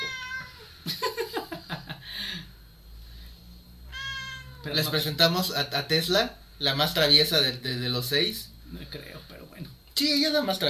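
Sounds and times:
cat meowing: 0.0 - 0.8, 3.9 - 5.2
speech: 4.6 - 10.6.

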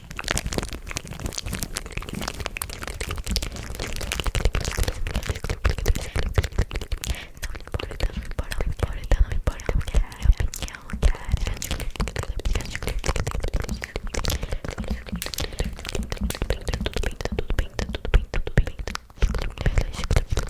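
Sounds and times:
wet mouth clicks, smacks and crackles: 0.0 - 20.4
person whispering gossip inaudibly: 2.1 - 20.4
faint breathy hiss: 7.0 - 20.4.

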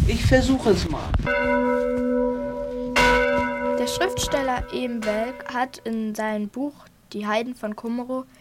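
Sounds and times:
speech: 0.1 - 2.1, 3.8 - 8.3
church bell rung by pulling rope: 1.3 - 6.0.

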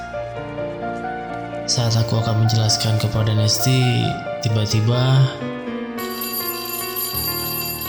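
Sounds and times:
speech: 1.7 - 5.6
bell ringing: 6.0 - 7.8.

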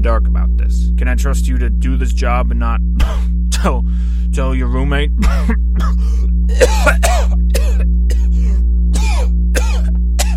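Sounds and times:
speech: 0.0 - 7.3
steady low electrical hum: 0.0 - 10.3
man coughing and clearing throat in phlegmy bursts: 3.0 - 3.9, 5.2 - 10.3.

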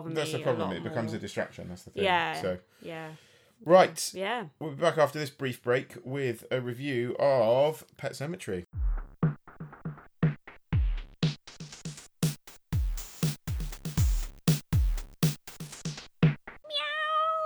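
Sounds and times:
speech: 0.0 - 8.7
sharp punchy percussive hits: 8.8 - 16.6
cat meowing: 16.6 - 17.4.

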